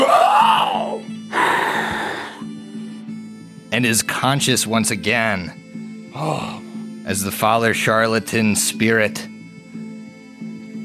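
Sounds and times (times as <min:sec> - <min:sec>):
person acting out a loud dramatic gasp: 0:00.0 - 0:02.5, 0:06.1 - 0:06.8
speech: 0:03.8 - 0:09.3.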